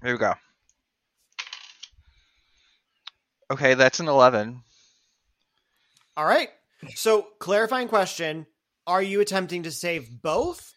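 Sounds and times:
speech: 0.0s - 0.5s, 3.5s - 4.7s, 6.2s - 10.7s
dice rolling across a hard surface during a tabletop role-playing game: 1.4s - 1.9s.

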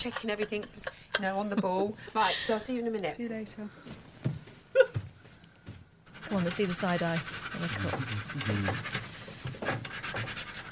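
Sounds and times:
speech: 0.0s - 4.1s, 6.3s - 9.0s
sanding a painted wooden cupboard: 6.1s - 10.6s.

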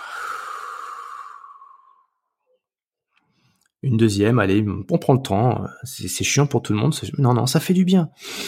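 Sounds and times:
long slow breath out during a guided relaxation exercise: 0.0s - 2.2s
speech: 3.8s - 8.4s.

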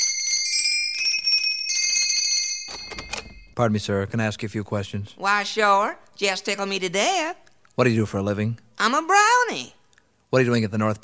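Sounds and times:
workshop bell ringing: 0.0s - 3.6s
speech: 3.6s - 11.0s.

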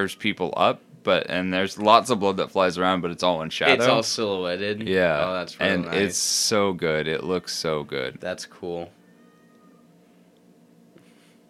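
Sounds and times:
speech: 0.0s - 9.0s
steady low hum: 0.0s - 11.4s
cat meowing outside: 9.0s - 9.9s.

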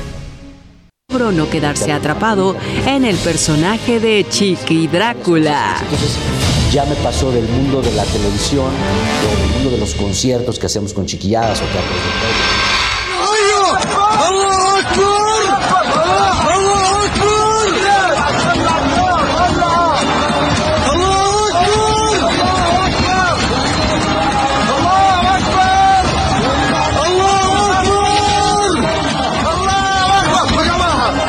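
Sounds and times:
speech: 1.2s - 12.7s
panicked crowd shouting and screaming during rocket interceptions: 12.1s - 31.2s.

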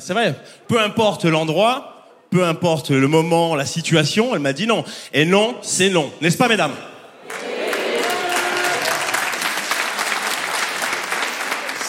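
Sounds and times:
speech: 0.0s - 7.4s
audience applause, mostly women clapping: 7.2s - 11.8s.

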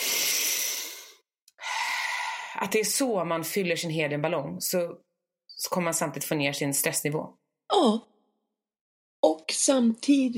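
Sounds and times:
deep airy breaths: 0.0s - 2.6s
speech: 2.6s - 8.1s, 9.6s - 10.3s.

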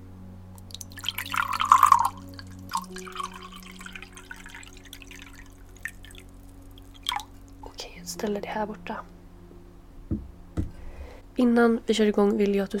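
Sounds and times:
water poured into a glass: 0.7s - 7.5s
speech: 8.2s - 9.2s, 11.4s - 12.7s.

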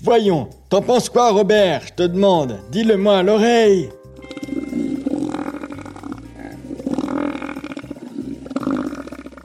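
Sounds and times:
speech: 0.0s - 4.5s
deep guttural elephant seal bellow: 4.2s - 9.4s.

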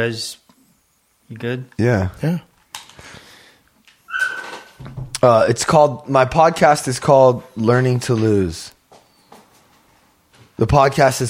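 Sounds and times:
speech: 0.0s - 0.4s, 1.3s - 3.2s, 4.8s - 8.8s, 10.6s - 11.2s
dog whimpering while being put into a van: 4.1s - 4.7s.

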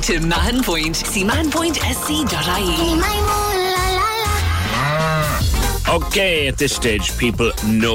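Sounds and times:
speech: 0.0s - 3.4s, 5.9s - 7.9s
cow mooing: 4.5s - 5.5s.

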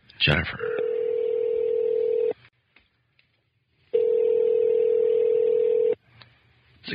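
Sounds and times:
phone ringback tones of an outgoing call: 0.7s - 2.4s, 4.0s - 6.0s.

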